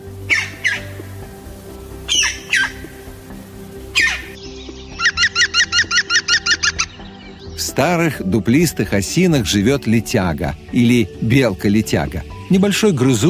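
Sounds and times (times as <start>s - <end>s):
green woodpecker harsh squawking and laughing calls: 0.2s - 1.2s, 1.9s - 7.7s
speech: 7.8s - 13.2s.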